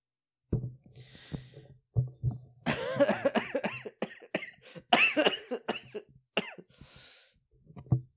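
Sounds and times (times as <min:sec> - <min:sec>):
person coughing: 0:02.7 - 0:06.7.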